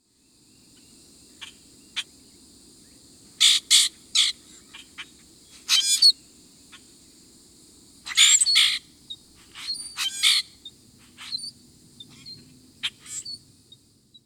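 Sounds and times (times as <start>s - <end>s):
Common Grackle calls and song: 3.4s - 6.9s, 8.0s - 14.2s.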